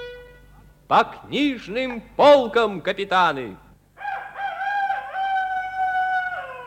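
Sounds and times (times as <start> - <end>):
speech: 0.9 - 3.7
rooster crowing with a strained wavering pitch: 4.0 - 6.6.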